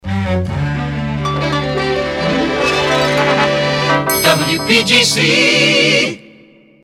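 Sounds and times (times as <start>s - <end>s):
orchestral jingle resings: 1.0s - 6.3s.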